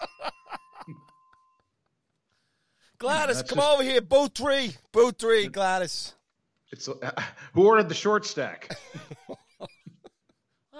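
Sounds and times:
laughter: 0.0s - 1.1s, 3.0s - 3.9s, 6.9s - 7.4s, 8.7s - 10.3s
desk bell slapped and ringing: 0.0s - 1.8s
speech: 3.0s - 9.2s.

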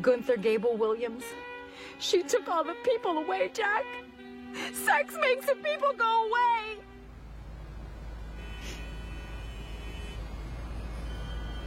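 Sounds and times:
speech: 0.0s - 6.9s
road traffic rumble from outside: 0.0s - 11.6s
vehicle passing: 3.5s - 11.6s.

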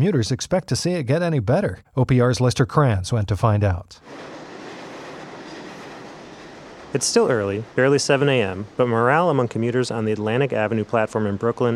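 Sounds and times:
speech: 0.0s - 4.4s, 6.9s - 11.7s
subway train rumbling into a station with wheels and rail noise: 4.0s - 11.7s.

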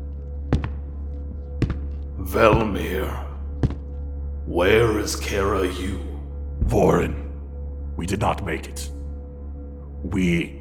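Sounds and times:
heavy thudding footsteps: 0.5s - 4.0s
speech: 2.2s - 3.3s, 4.5s - 7.2s, 8.0s - 9.0s, 10.0s - 10.5s.

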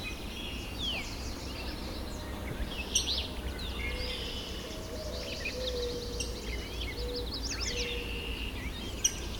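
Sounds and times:
chorus of other birds chirping and trilling: 0.0s - 9.3s
yellow warbler singing: 0.0s - 9.3s.

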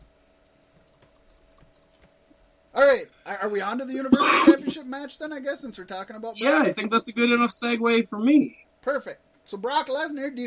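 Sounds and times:
computer mouse clicking: 0.0s - 2.2s
low steady hum: 0.0s - 10.4s
speech: 2.8s - 10.4s.

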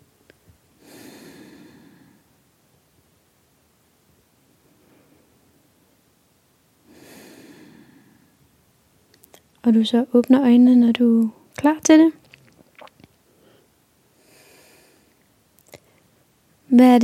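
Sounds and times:
low hiss: 0.0s - 17.0s
slow deep breaths taken with eyes closed during a guided relaxation exercise: 0.8s - 2.4s, 4.6s - 5.7s, 6.8s - 8.6s, 13.2s - 16.1s
speech: 9.6s - 12.2s, 16.8s - 17.0s.

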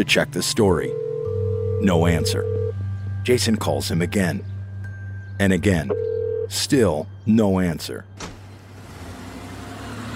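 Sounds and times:
speech: 0.0s - 1.0s, 1.8s - 2.6s, 3.2s - 4.5s, 5.4s - 8.2s
car door shutting outside a home's security gate at night: 8.2s - 8.5s.

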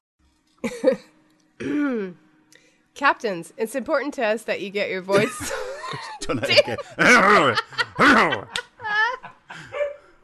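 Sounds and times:
speech: 0.6s - 2.2s, 3.0s - 8.6s
laughter: 5.2s - 9.8s
dog barking: 9.7s - 10.1s.

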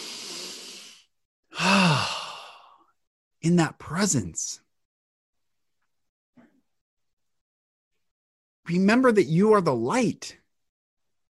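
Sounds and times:
deep breathing: 0.0s - 3.0s
voiced sigh with a low tone: 0.0s - 3.0s
speech: 3.4s - 4.6s, 8.7s - 10.4s.

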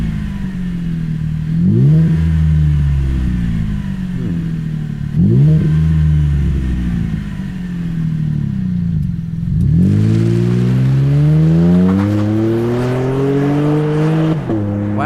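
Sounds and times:
rumbling truck engine idle: 0.0s - 9.7s
Borla S-Type T304 stainless steel truck exhaust revving: 0.0s - 15.0s.

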